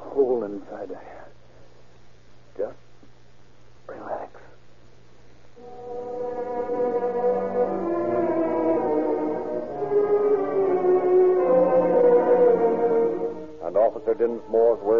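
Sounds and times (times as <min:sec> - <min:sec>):
speech: 0:00.3 - 0:01.4
police ambulance siren wailing as the ambulance arrives: 0:05.6 - 0:14.9.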